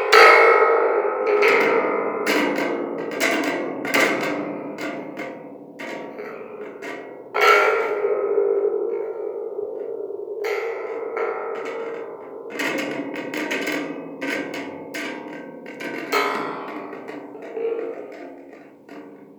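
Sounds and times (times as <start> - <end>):
thunder drum: 0.2 - 19.3.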